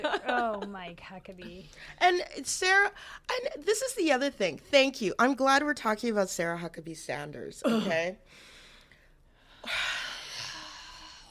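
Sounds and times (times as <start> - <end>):
speech: 0.0 - 8.5, 9.6 - 9.9
heavy airy breath: 8.3 - 11.3.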